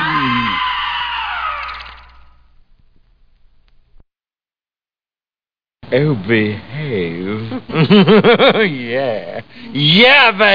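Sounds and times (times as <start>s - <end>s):
loud shrill scream from a horror film trailer: 0.0s - 2.4s
speech: 5.9s - 10.5s
laughter: 7.6s - 8.8s.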